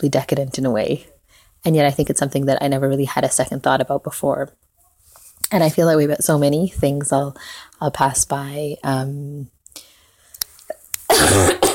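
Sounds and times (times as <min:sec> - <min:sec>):
speech: 0:00.0 - 0:04.6, 0:05.4 - 0:09.6
breaths: 0:01.2 - 0:01.6, 0:07.4 - 0:07.8, 0:09.7 - 0:10.4
person with a lingering cough coughing harshly: 0:11.1 - 0:11.7.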